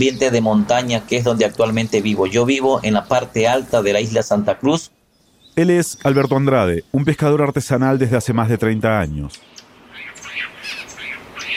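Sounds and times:
speech: 0:00.0 - 0:05.0, 0:05.6 - 0:10.5
various birds trilling and chirping in a mountain forest on Santa Cruz island: 0:00.0 - 0:08.4, 0:09.3 - 0:11.5
soft hiss: 0:00.0 - 0:11.5.

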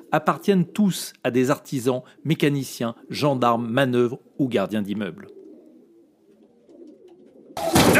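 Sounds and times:
homing pigeons cooing in a dovecote: 0:00.0 - 0:01.1, 0:01.8 - 0:07.8
speech: 0:00.1 - 0:05.4
pigeon wings fluttering: 0:06.3 - 0:07.9.

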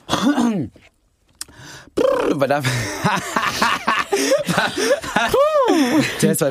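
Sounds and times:
coughing and throat clearing with groaning tones: 0:00.0 - 0:00.9
speech: 0:00.3 - 0:00.9, 0:01.9 - 0:06.4
laughter: 0:02.6 - 0:06.3.

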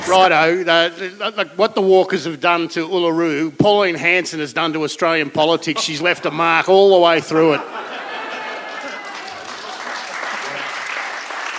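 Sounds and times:
speech: 0:00.1 - 0:08.0
laughter: 0:05.7 - 0:11.5
sizable audience applauding: 0:07.8 - 0:11.5.

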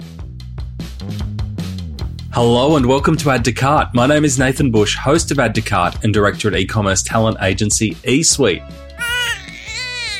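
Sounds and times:
speech: 0:02.4 - 0:08.9
baby crying with a high wailing burst: 0:09.0 - 0:10.1.

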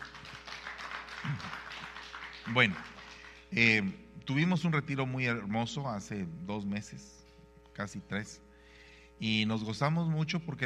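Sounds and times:
crowd applauding after a prayer: 0:00.0 - 0:03.6
speech: 0:02.5 - 0:02.9, 0:03.5 - 0:07.2, 0:07.8 - 0:08.5, 0:09.2 - 0:10.6.

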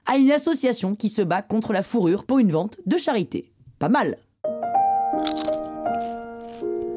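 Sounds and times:
speech: 0:00.1 - 0:04.3
crunching of crisp food: 0:05.2 - 0:06.9.

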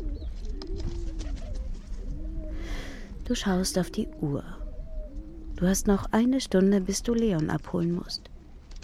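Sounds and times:
pigeons cooing on a paved sidewalk: 0:00.0 - 0:06.0
speech: 0:03.3 - 0:04.6, 0:05.6 - 0:08.3.

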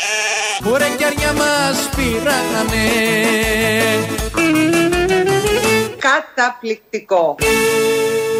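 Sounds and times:
flock of sheep bleating: 0:00.0 - 0:00.7
speech: 0:00.6 - 0:08.2.

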